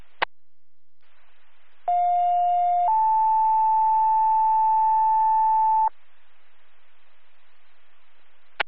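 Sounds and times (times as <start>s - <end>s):
faint radio hiss: 0.0s - 8.6s
EMS radio dispatch two-tone alert page: 1.9s - 5.9s.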